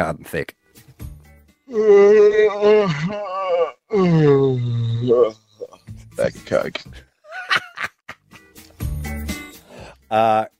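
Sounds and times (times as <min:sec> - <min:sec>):
speech: 0:00.0 - 0:00.9, 0:01.7 - 0:05.4, 0:06.2 - 0:07.9, 0:10.1 - 0:10.5
person yawning: 0:01.7 - 0:05.7
breath: 0:09.5 - 0:10.0.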